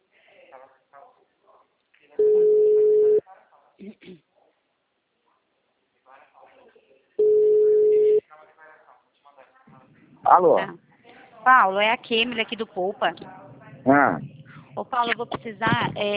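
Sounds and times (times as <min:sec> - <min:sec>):
telephone ringing tones of an outgoing call: 0:02.2 - 0:03.2, 0:07.2 - 0:08.2
speech: 0:10.3 - 0:10.8, 0:11.4 - 0:16.1.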